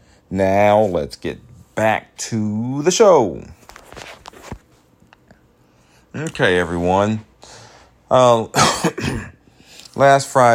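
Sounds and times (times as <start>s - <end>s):
speech: 0.3s - 3.6s, 6.2s - 9.3s, 10.0s - 10.5s
person coughing with throaty raspy coughs: 8.5s - 9.4s.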